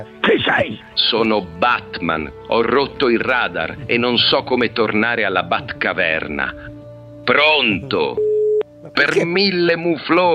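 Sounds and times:
animated speech from voices: 0.0 - 0.8, 8.9 - 9.6
speech: 0.0 - 6.7, 7.3 - 10.3
telephone busy tone after call drops: 8.2 - 8.7.

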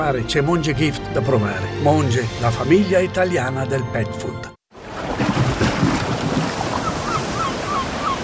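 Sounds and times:
speech: 0.0 - 4.5
sea waves surf: 4.7 - 8.2
wind gusts: 4.8 - 8.2.

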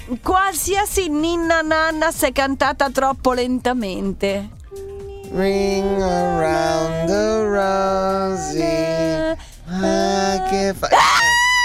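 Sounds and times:
speech: 0.1 - 11.3
person screaming: 4.9 - 11.6.

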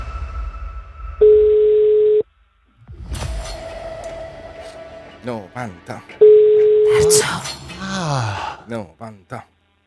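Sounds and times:
telephone ring heard over the line: 1.2 - 2.3, 5.7 - 7.1
speech: 5.3 - 6.2, 6.9 - 9.5.

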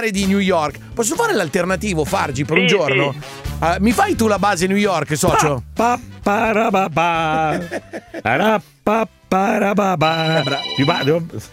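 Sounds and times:
speech: 0.0 - 11.5
telephone ringing: 2.5 - 3.2, 10.1 - 11.2
laughter: 7.1 - 8.4.

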